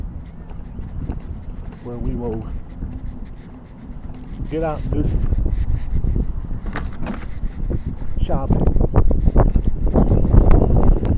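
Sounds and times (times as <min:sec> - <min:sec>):
wind on a breezy day outdoors buffeting the microphone: 0:00.0 - 0:11.1
speech: 0:01.8 - 0:03.0, 0:04.4 - 0:05.7, 0:08.3 - 0:08.9.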